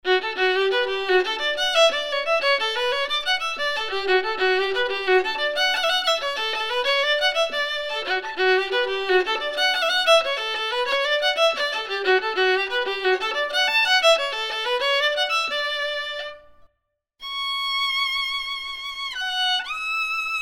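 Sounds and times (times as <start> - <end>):
violin playing: 0.0 - 20.3.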